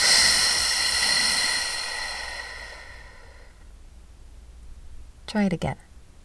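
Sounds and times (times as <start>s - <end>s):
long breath exhaled through pursed lips: 0.0s - 3.6s
speech: 5.3s - 5.9s.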